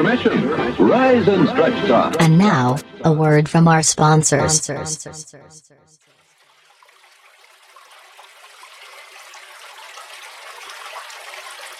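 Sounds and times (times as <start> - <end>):
speech: 0.0 - 6.0
water pouring from a tap: 6.1 - 11.7.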